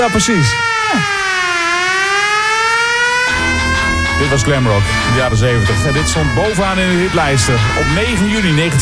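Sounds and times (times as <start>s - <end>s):
speech: 0.0s - 1.3s, 4.2s - 8.8s
siren wail in a glam rock song: 0.0s - 8.8s.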